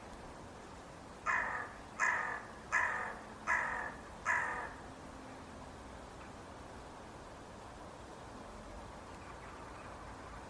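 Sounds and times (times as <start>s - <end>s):
hissing background noise: 0.0s - 10.4s
bird calling with rough raspy caws: 1.2s - 4.8s.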